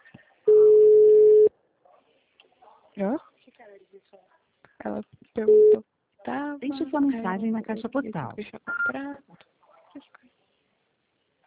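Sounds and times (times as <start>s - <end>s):
unanswered telephone call ringback tone: 0.5s - 1.5s
speech: 3.0s - 3.2s, 4.0s - 9.3s.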